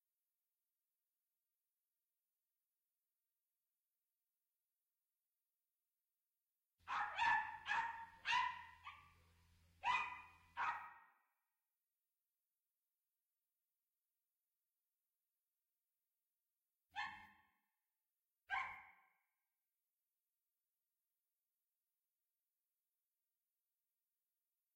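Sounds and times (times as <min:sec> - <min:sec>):
dog barking: 0:06.8 - 0:11.3, 0:17.0 - 0:17.5, 0:18.5 - 0:19.2.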